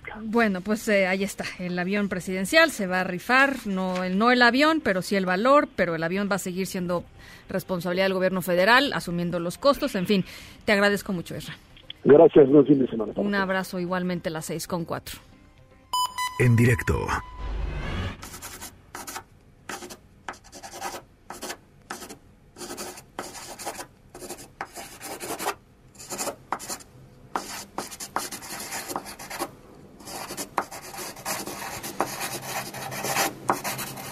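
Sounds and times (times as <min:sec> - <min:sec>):
speech: 0:00.2 - 0:15.3, 0:16.4 - 0:17.3
pen or pencil scratching across a sheet of paper: 0:18.2 - 0:34.0.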